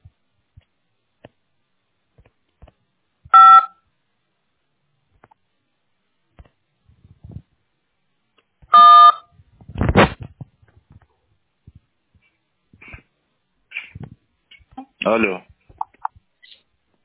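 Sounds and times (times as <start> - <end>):
telephone dialing tone bursts while a call is transferred to technical support: 3.4 - 3.8
speech: 15.1 - 15.5.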